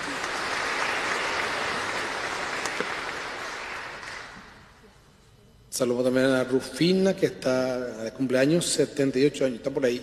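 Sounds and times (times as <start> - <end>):
room full of people applauding: 0.0 - 4.6
speech: 5.8 - 10.0.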